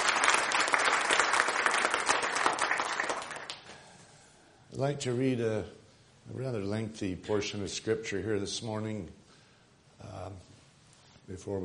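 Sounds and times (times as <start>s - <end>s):
room full of people applauding: 0.0s - 3.7s
speech: 4.8s - 9.2s, 11.3s - 11.6s.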